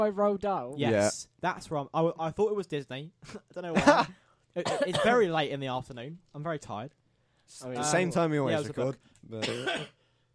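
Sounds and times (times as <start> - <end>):
speech: 0.0 - 10.0
raspy cough: 3.3 - 5.2, 9.4 - 10.0.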